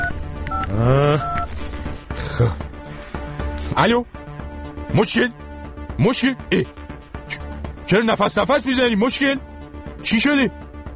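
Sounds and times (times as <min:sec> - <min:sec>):
telephone number dialed on a keypad with electronic beeps: 0:00.0 - 0:01.5
speech: 0:00.7 - 0:01.6, 0:02.4 - 0:02.7, 0:03.8 - 0:04.2, 0:04.9 - 0:05.4, 0:06.0 - 0:10.6.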